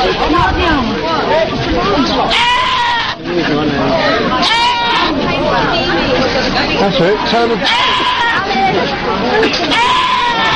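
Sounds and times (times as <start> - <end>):
busy noisy background: 0.0 - 10.5
two goats in a rack bleating like human screams: 2.3 - 3.2, 4.4 - 5.2, 7.6 - 8.5, 9.6 - 10.5
speech: 6.9 - 10.2.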